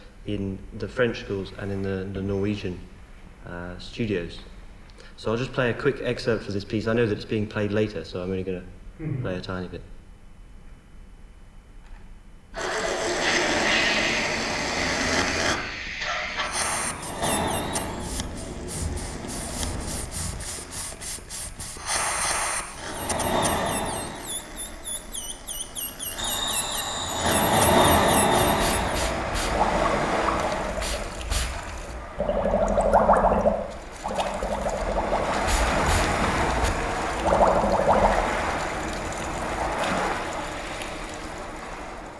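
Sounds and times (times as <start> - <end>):
speech: 0.2 - 4.6, 5.2 - 9.9
airy hissing in an electroacoustic composition: 12.6 - 42.1
dense bubbling and gurgling water sounds in an electroacoustic composition: 16.4 - 42.1
high fluttering chirps in an electroacoustic composition: 16.5 - 42.0.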